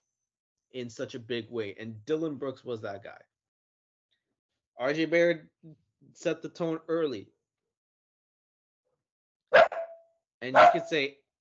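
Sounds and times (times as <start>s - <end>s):
speech: 0.7s - 3.3s, 4.8s - 7.4s, 10.4s - 11.2s
guard dog barking: 9.5s - 11.0s.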